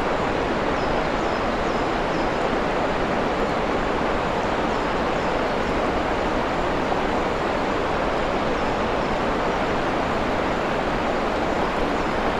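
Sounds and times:
waterfall roaring in a forest clearing: 0.0 - 12.3.

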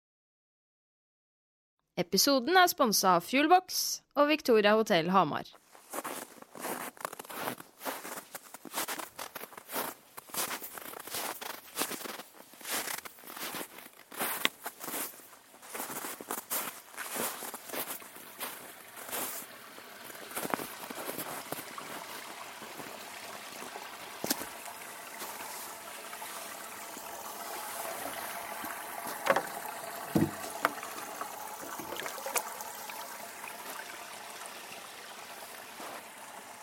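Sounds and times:
speech: 2.0 - 5.6
footsteps crunching beside a stream on a cabin trip: 5.6 - 23.0, 23.6 - 33.9, 35.8 - 36.1
stream trickling: 5.7 - 36.6
water splashing as water is fetched from the stream: 14.9 - 36.6.

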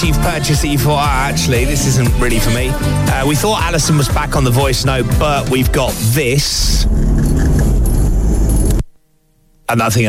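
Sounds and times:
speech: 0.0 - 7.4, 9.7 - 10.0
car driving, engine and road rumble captured on a phone voice note: 6.6 - 8.9.

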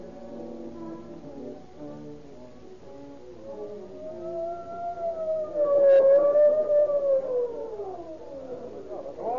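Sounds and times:
ambulance siren wailing: 4.0 - 9.3.

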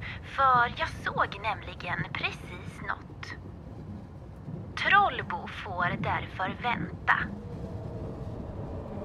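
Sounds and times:
train wagons rolling with a low steady rumble: 0.0 - 9.0
speech: 0.4 - 3.5, 4.8 - 7.6.

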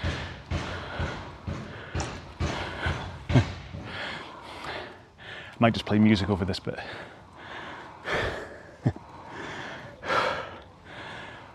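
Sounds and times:
hammer blows hammering out a dent in a garage: 0.0 - 4.9
speech: 5.6 - 7.2.

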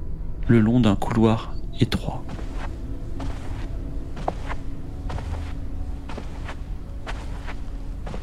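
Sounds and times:
constant low hum: 0.0 - 8.2
speech: 0.5 - 2.5
soft footsteps on thick carpet: 2.2 - 8.2.

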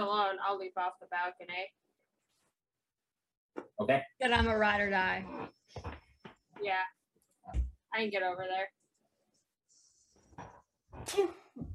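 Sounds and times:
speech: 0.0 - 1.8, 3.8 - 5.9, 6.6 - 8.8, 11.0 - 11.7
sneeze: 11.0 - 11.5.

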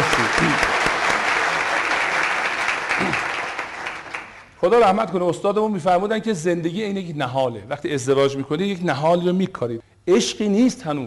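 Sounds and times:
laughter: 0.0 - 1.2
large audience applause: 0.0 - 4.5
speech: 4.6 - 11.0.

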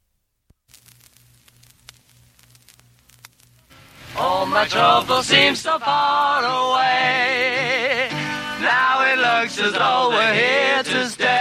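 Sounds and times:
low steady hum: 0.0 - 7.8
vinyl record crackle with pops and clicks: 0.0 - 11.3
speech: 4.4 - 8.0.

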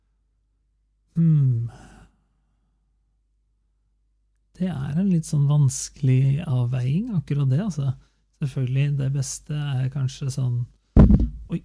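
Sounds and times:
speech: 1.2 - 1.9, 4.6 - 10.8
head bumping into a microphone: 11.0 - 11.5.

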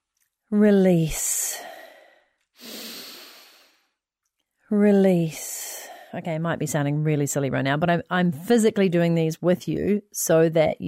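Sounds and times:
speech: 0.5 - 1.4, 4.7 - 5.5, 6.1 - 10.8
slow breathing in and out: 1.3 - 4.0.

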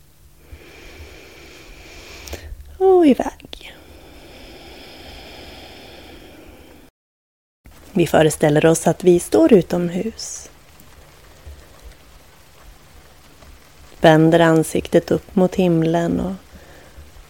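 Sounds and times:
gentle rain falling: 0.0 - 6.9, 7.7 - 17.2
slow inhalation through the nose during a guided relaxation exercise: 0.4 - 2.6, 3.6 - 6.9, 16.5 - 17.2
speech: 2.8 - 3.4, 8.0 - 10.5, 14.0 - 16.4.

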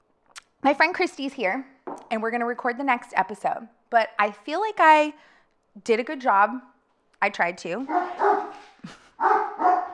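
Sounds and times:
speech: 0.6 - 9.4
large dog barking: 7.9 - 9.9.

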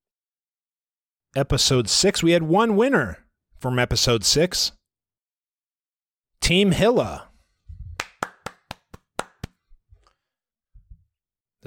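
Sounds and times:
speech: 1.3 - 4.8, 6.5 - 7.3
soft low thumps: 7.7 - 8.0
hand clapping: 8.0 - 9.7.

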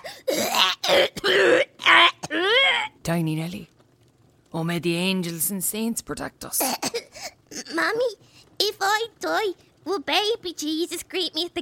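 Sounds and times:
young girl with tuberculosis coughing severely: 0.0 - 2.6, 6.6 - 7.4
speech: 4.5 - 6.9, 7.8 - 8.2, 8.8 - 11.6.

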